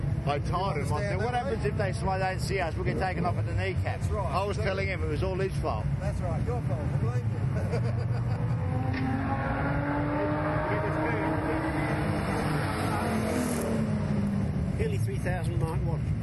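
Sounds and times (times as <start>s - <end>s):
speech: 0.2s - 8.4s, 14.8s - 16.2s
laughter: 7.4s - 8.8s
car engine passing by: 8.4s - 15.1s.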